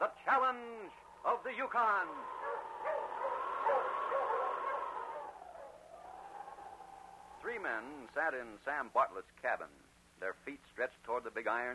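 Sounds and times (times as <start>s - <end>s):
speech: 0.0s - 3.8s, 7.4s - 11.7s
dog barking and yelping: 2.1s - 7.4s.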